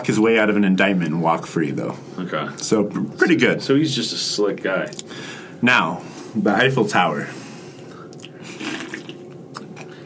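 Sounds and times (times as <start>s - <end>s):
speech: 0.0s - 7.4s
sip of beer slurping: 7.8s - 10.0s
sharp click-like lip smack: 8.1s - 10.0s.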